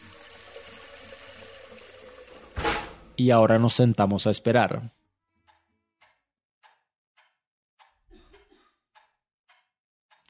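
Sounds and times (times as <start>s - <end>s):
stream of water pouring into a pot of sushi rice: 0.0s - 2.7s
brief bump: 2.6s - 3.0s
speech: 3.2s - 5.0s.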